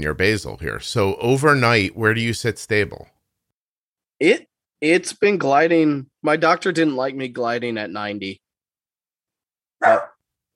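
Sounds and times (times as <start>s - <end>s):
speech: 0.0s - 3.1s, 4.2s - 8.4s, 9.8s - 10.1s
dog barking: 9.8s - 10.2s.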